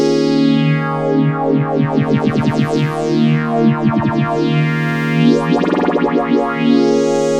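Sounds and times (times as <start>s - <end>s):
morphing fifth interval tone: 0.1s - 7.3s.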